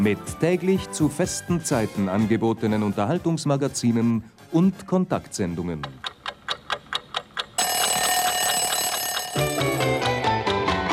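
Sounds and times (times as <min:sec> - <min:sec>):
speech: 0:00.0 - 0:06.2
alarm clock ringing: 0:07.6 - 0:10.4.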